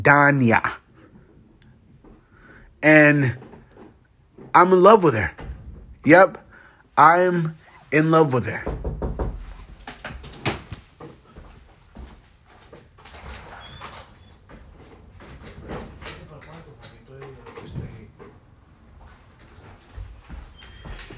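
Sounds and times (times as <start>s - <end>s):
speech: 0.0s - 0.8s, 2.8s - 3.4s, 4.5s - 5.4s, 6.0s - 6.4s, 7.0s - 8.8s
sharp knocks on a door: 8.6s - 9.6s.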